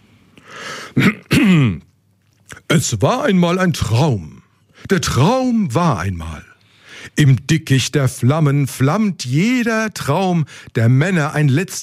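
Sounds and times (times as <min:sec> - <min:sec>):
man clearing his throat: 0:00.9 - 0:01.9
speech: 0:01.0 - 0:01.2, 0:02.8 - 0:06.5, 0:07.1 - 0:11.8.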